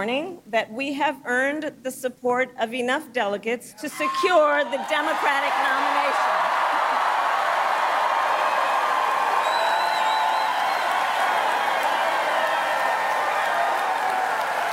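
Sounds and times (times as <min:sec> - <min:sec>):
speech: 0:00.0 - 0:06.6
large rally crowd cheering and applauding: 0:04.6 - 0:14.7
crowd whistles: 0:09.4 - 0:12.2.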